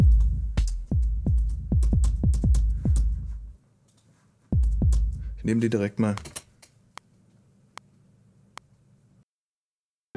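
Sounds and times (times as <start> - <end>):
deep booming heartbeat-like drum sample thumps: 0.0 - 3.6, 4.6 - 5.4
speech: 5.5 - 6.4.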